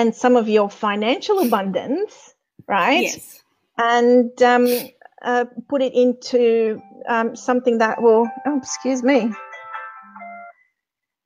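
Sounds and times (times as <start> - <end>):
speech: 0.0 - 9.5
mobile phone ringtone in a house: 9.4 - 10.7.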